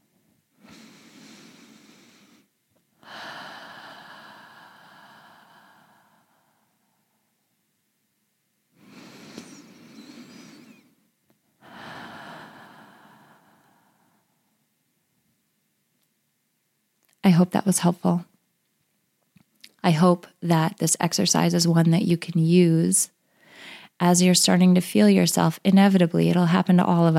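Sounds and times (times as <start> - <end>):
slow deep breaths during a calming breathing exercise: 0.6 - 7.3, 8.7 - 11.0, 11.6 - 14.5, 23.2 - 24.0
speech: 17.2 - 18.3, 19.8 - 23.2, 24.0 - 27.1.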